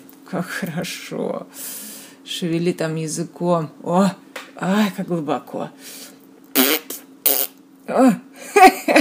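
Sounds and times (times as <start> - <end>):
speech: 0.3 - 6.1, 7.9 - 9.0
fart: 6.5 - 7.6.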